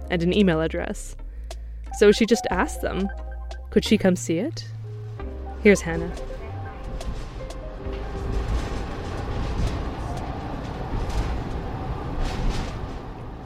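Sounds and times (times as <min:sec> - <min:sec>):
speech: 0:00.1 - 0:01.2, 0:01.9 - 0:04.8, 0:05.6 - 0:06.3
small local one-car train rumbling along the track: 0:05.6 - 0:13.4.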